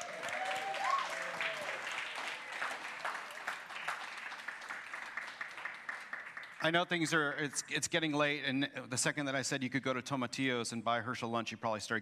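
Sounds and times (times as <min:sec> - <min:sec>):
whoops from the crowd: 0:00.0 - 0:02.4
audience clapping and cheering after a prayer: 0:00.0 - 0:07.4
speech: 0:06.6 - 0:11.9.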